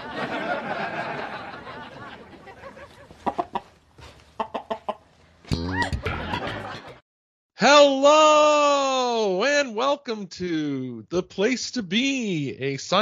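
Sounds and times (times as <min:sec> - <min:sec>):
laughter: 0:00.0 - 0:03.4, 0:05.5 - 0:07.0
rooster clucking in a busy barnyard: 0:02.5 - 0:03.8, 0:04.4 - 0:06.8
rooster crowing squawk: 0:03.2 - 0:03.7
speech: 0:07.6 - 0:13.0.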